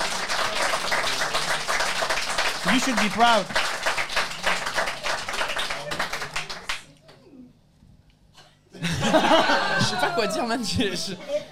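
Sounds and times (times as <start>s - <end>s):
applause from several people: 0.0s - 6.9s
speech: 2.6s - 3.6s, 9.2s - 11.4s
laughter: 8.7s - 11.5s.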